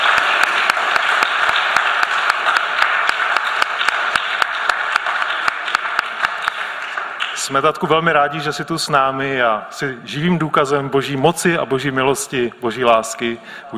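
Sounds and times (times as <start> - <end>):
audience applauding to welcome a returning guest: 0.0 - 8.4
speech: 7.5 - 13.7.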